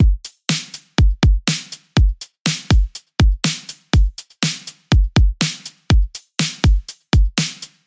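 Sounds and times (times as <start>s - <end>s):
full drum kit playing: 0.0s - 7.8s.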